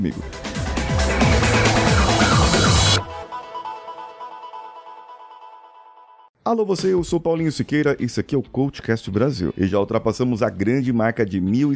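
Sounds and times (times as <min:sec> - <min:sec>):
speech: 0:00.0 - 0:01.6, 0:06.5 - 0:11.7
podcast intro jingle music with a pulsing bass line: 0:00.3 - 0:04.3.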